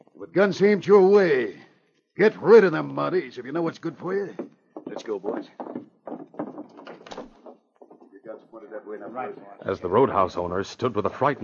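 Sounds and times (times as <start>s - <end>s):
speech: 0.2s - 1.6s, 2.2s - 5.9s, 8.6s - 11.4s
soft knocks and rattles of the door: 3.7s - 8.4s
roadhouse back room door creaking and scraping as pushed partway shut: 3.9s - 8.2s.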